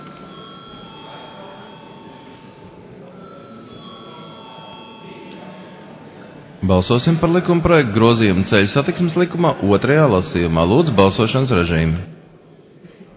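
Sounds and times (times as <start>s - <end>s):
chamber bell rung in a parliament before a vote: 0.0s - 9.3s
speech: 6.6s - 12.2s.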